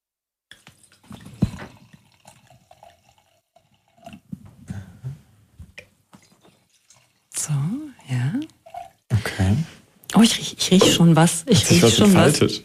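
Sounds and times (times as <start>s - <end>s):
wine from a screw-cap bottle poured into glasses: 0.5s - 4.3s, 6.2s - 9.4s
speech: 10.2s - 12.6s.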